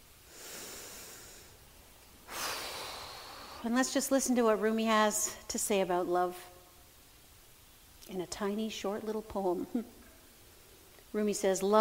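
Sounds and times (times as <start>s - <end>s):
deep breath: 0.3s - 1.6s, 2.3s - 3.7s
speech: 3.6s - 6.5s, 8.1s - 10.0s, 11.1s - 11.7s.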